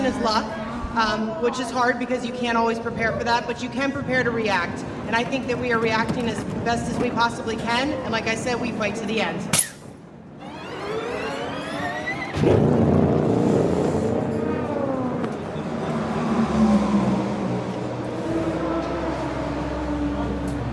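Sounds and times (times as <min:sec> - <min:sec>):
speech: 0:00.0 - 0:09.6
race cars entering pit lane during an endurance race: 0:10.4 - 0:20.7.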